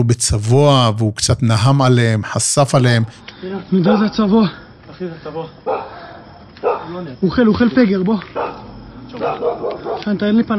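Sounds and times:
speech: 0:00.0 - 0:05.8, 0:06.9 - 0:10.5
dog barking: 0:03.9 - 0:04.2, 0:05.6 - 0:07.0, 0:08.3 - 0:10.1.

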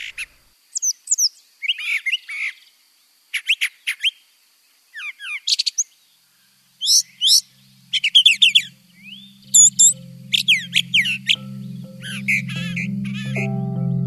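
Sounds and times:
brown thrasher singing: 0:00.0 - 0:02.7, 0:05.0 - 0:14.0
low steady hum: 0:06.6 - 0:14.0.

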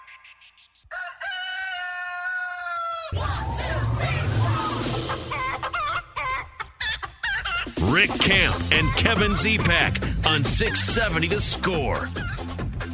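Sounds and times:
chickens clucking and squawking: 0:00.0 - 0:07.8, 0:12.1 - 0:12.9
rooster crowing: 0:00.8 - 0:06.0
speech: 0:07.9 - 0:12.4.

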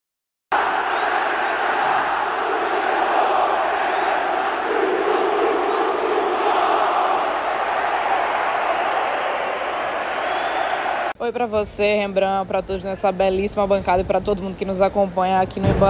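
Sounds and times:
football supporters cheering and shouting in a stadium: 0:00.5 - 0:11.2
speech: 0:11.3 - 0:15.8.

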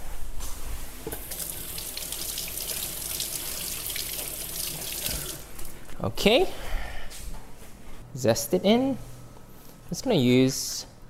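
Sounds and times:
water running from a kitchen tap over an orange: 0:01.2 - 0:05.7
speech: 0:06.0 - 0:06.6, 0:08.2 - 0:09.1, 0:09.9 - 0:10.9.

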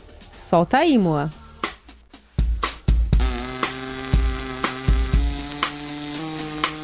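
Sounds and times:
speech: 0:00.5 - 0:01.4
steady thumping beat: 0:01.6 - 0:06.8
plastic drinking straws with holes played as a wind instrument by a young man: 0:03.2 - 0:06.8.

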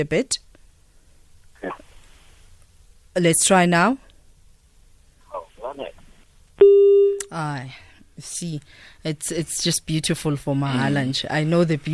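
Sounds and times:
speech: 0:00.0 - 0:00.4, 0:03.2 - 0:04.0, 0:06.6 - 0:11.9
voice over a caller's phone line: 0:05.3 - 0:06.0.

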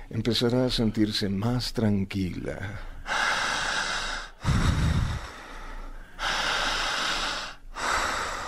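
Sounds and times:
speech: 0:00.1 - 0:02.9
slow deep breathing during a guided relaxation exercise: 0:02.7 - 0:08.4
low rumbling gust: 0:04.4 - 0:05.4.

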